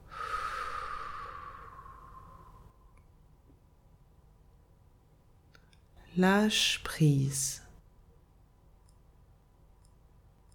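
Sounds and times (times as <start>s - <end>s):
deep breath in through the nose and out through the mouth during a slow breathing exercise: 0.0s - 3.0s
speech: 6.2s - 7.6s.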